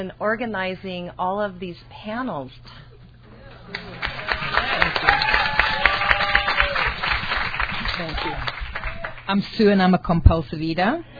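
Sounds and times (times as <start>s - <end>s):
speech: 0.0s - 2.9s, 8.0s - 8.6s, 9.3s - 11.1s
room full of people clapping: 3.7s - 9.3s.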